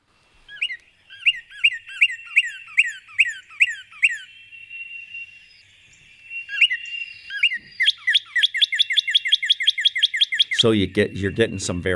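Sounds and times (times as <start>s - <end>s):
northern cardinal singing loud clear slurred whistles: 0.5s - 11.9s
speech: 10.6s - 11.9s.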